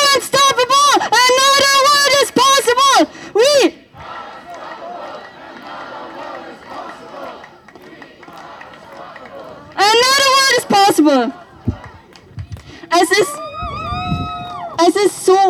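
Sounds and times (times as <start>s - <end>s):
large protest crowd chanting a slogan at a demonstration: 0.2s - 15.2s
murmuring protest crowd: 3.0s - 15.4s.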